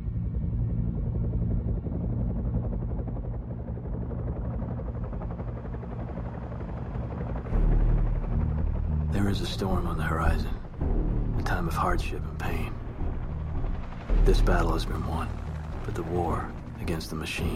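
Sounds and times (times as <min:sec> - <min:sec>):
helicopter rotor and engine drone: 0:00.0 - 0:17.5
speech: 0:09.3 - 0:12.8, 0:14.2 - 0:17.5.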